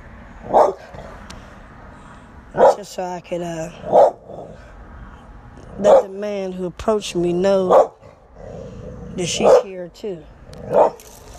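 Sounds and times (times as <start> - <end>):
dog barking outside: 0.5 - 0.9, 2.6 - 2.8, 3.8 - 4.2, 5.8 - 6.1, 7.7 - 8.0, 9.4 - 9.7, 10.6 - 11.0
speech: 2.5 - 4.0, 5.8 - 7.9, 9.2 - 11.0.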